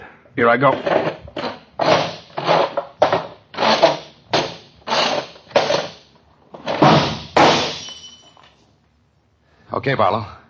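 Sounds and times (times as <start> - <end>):
speech: 0.4 - 1.2, 9.8 - 10.4
chair shoved over: 0.8 - 8.6
drinking glass knocked onto the floor: 6.8 - 8.6.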